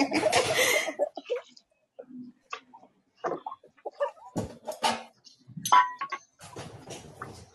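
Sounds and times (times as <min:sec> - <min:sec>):
laughter: 0:00.0 - 0:01.4
plates and dishes clinking while loading a dishwasher: 0:04.4 - 0:06.7.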